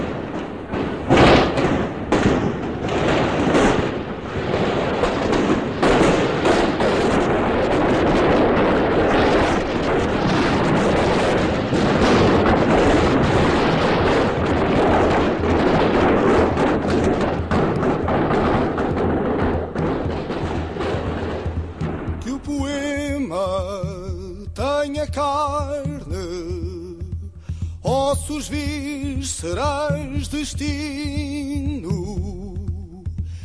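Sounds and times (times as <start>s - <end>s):
loud dense roar of noise: 0.0s - 21.5s
gunshots: 0.0s - 33.4s
music: 5.5s - 33.4s.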